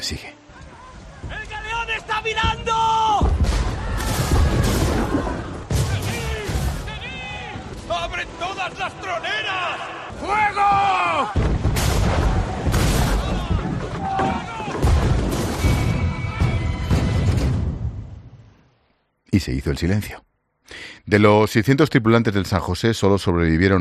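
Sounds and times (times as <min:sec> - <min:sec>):
speech: 0:00.1 - 0:00.4, 0:02.2 - 0:03.0, 0:19.4 - 0:20.2, 0:21.1 - 0:23.7
people shouting: 0:00.4 - 0:17.0
heavy naval cannon fire in a sea battle: 0:03.2 - 0:07.8, 0:11.3 - 0:18.3
crashing explosions including a great explosion that sinks a galleon: 0:03.2 - 0:07.9, 0:10.8 - 0:18.3.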